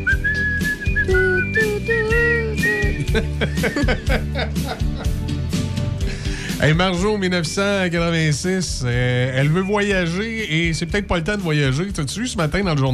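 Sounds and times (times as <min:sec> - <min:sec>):
several people whistling a tune together: 0:00.0 - 0:03.8
busy rhythmic backdrop: 0:00.0 - 0:12.9
laughter: 0:02.8 - 0:05.2
speech: 0:03.2 - 0:04.9, 0:06.6 - 0:12.9.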